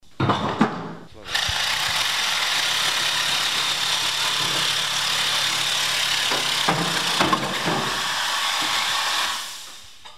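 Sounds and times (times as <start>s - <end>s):
mining noise: 1.2s - 10.1s.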